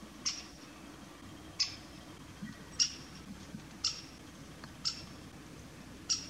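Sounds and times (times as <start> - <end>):
great spotted woodpecker: 0.2 - 0.7, 1.5 - 5.2, 6.1 - 6.2.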